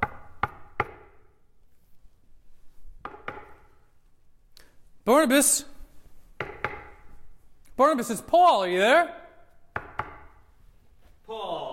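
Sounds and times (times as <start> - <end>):
speech: 5.2 - 5.7, 7.8 - 9.2
sharp knocks on a door: 6.4 - 7.0, 9.7 - 10.3.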